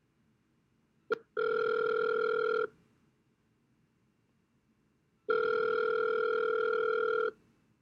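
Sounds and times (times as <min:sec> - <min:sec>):
phone ringing with a steady electronic tone: 0:01.3 - 0:02.7, 0:05.3 - 0:07.4.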